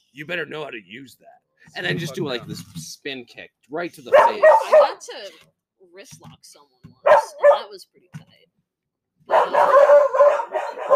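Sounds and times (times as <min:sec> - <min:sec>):
speech: 0:00.2 - 0:08.5, 0:09.4 - 0:10.9
pet dog barking and yelping: 0:04.1 - 0:05.0, 0:07.0 - 0:07.7, 0:09.3 - 0:10.9.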